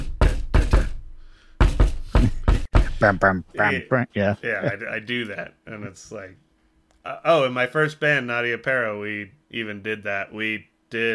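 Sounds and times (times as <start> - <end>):
loud knocks on a door in a syncopated pattern: 1.6 - 3.0
speech: 3.0 - 6.4, 7.0 - 11.1.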